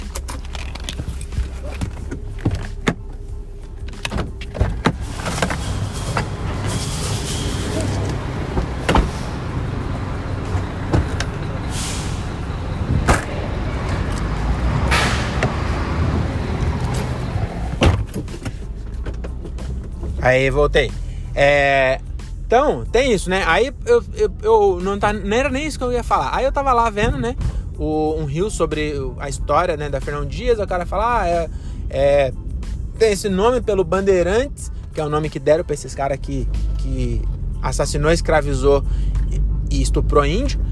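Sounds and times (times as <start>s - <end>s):
car trunk opening: 0.0s - 9.4s, 10.5s - 11.5s, 12.9s - 14.2s, 14.8s - 15.8s, 16.6s - 20.2s
steady vehicle hum: 0.0s - 40.7s
speech: 20.3s - 32.4s, 33.0s - 40.7s.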